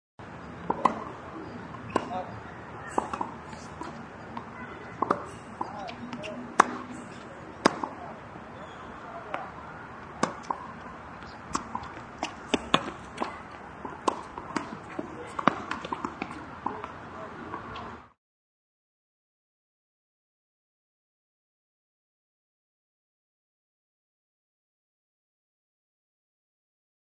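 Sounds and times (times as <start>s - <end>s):
ambient noise at park: 0.2s - 18.1s
tennis volley at park: 0.6s - 17.9s.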